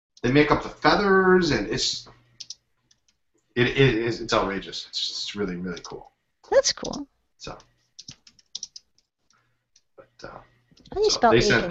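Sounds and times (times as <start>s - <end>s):
speech: 0.2s - 2.2s, 3.6s - 7.7s, 10.2s - 11.6s
fingers typing on a computer keyboard: 2.4s - 3.2s, 7.9s - 9.1s.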